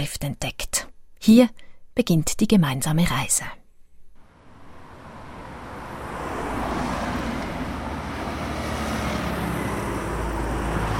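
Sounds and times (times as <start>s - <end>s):
speech: 0.0s - 3.6s
cars speeding around a bend on the main road through St. Georgen: 4.2s - 10.9s.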